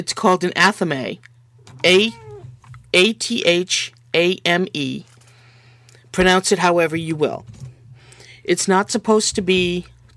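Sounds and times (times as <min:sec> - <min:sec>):
speech: 0:00.0 - 0:02.2, 0:02.9 - 0:05.1, 0:06.1 - 0:07.6, 0:08.5 - 0:10.0
steady low hum: 0:00.0 - 0:10.1
cat meowing: 0:01.5 - 0:02.9.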